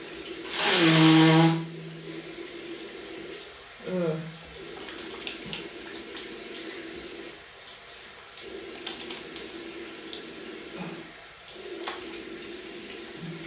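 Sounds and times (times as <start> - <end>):
tap water running for face washing: 0.0 - 13.4
soft water splashes: 3.2 - 13.4.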